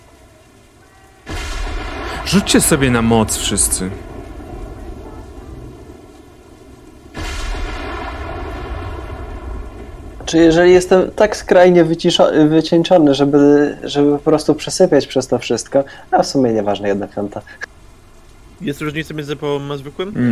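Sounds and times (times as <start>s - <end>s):
distant thunder-like explosion booms: 1.2s - 11.1s
speech: 2.3s - 4.1s, 10.3s - 17.7s, 18.6s - 20.3s.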